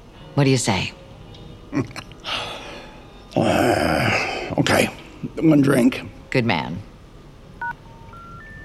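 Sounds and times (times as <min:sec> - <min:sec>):
faint hum: 0:00.0 - 0:08.6
speech: 0:00.4 - 0:01.0, 0:01.7 - 0:02.4, 0:03.4 - 0:04.0, 0:04.6 - 0:06.9
phone keypad dialing tones: 0:07.6 - 0:08.6.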